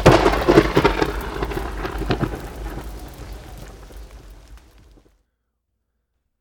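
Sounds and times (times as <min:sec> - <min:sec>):
loud thunder rumbling in a storm: 0:00.0 - 0:05.1
steady rain hissing: 0:00.0 - 0:05.2.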